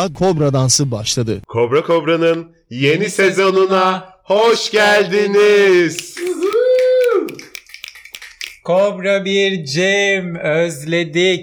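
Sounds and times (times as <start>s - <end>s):
speech: 0.0s - 6.5s, 8.7s - 11.4s
sharp crisp clicks: 5.5s - 8.8s
person cheering whoo: 6.0s - 7.4s.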